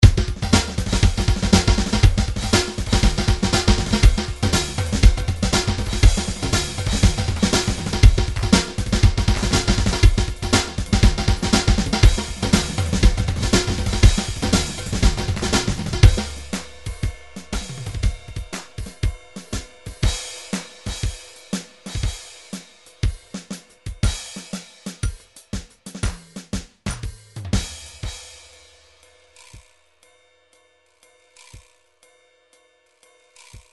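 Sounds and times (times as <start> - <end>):
swing drum grooves from MIDI loops: 0.0 - 28.6.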